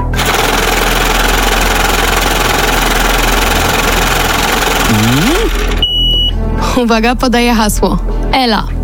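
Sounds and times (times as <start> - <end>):
lottery drawing machine whirring and rattling with tumbling balls: 0.0 - 5.9
speech: 5.0 - 5.6, 6.8 - 8.7.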